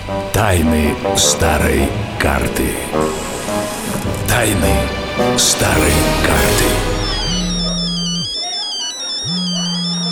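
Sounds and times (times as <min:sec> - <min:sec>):
speech: 0:00.1 - 0:03.3, 0:04.3 - 0:07.0
mobile phone ringtone, a warbling electronic melody: 0:05.7 - 0:10.1.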